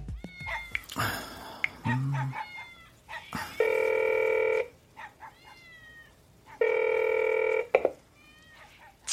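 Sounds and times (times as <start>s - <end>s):
cat meowing: 0.2s - 0.9s, 1.8s - 3.6s, 5.0s - 6.6s, 8.1s - 9.0s
mobile phone ringback tone on an unanswered call: 3.6s - 4.7s, 6.6s - 7.8s.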